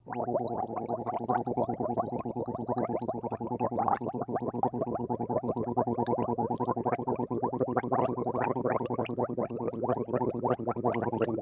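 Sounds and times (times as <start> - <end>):
person gargling: 0.0 - 11.4.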